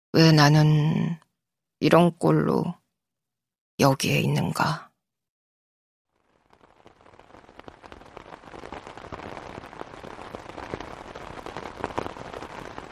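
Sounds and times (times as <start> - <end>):
speech: 0.1 - 1.2, 1.8 - 2.8, 3.8 - 4.9
heavy rain pounding on a folding three-section umbrella on a walking path: 6.1 - 12.9.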